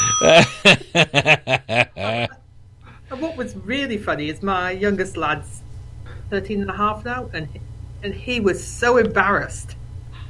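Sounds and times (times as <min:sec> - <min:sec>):
bright bell ding: 0:00.0 - 0:00.6
people laughing: 0:00.0 - 0:02.4
speech: 0:00.2 - 0:01.4, 0:04.0 - 0:05.6, 0:06.3 - 0:09.8.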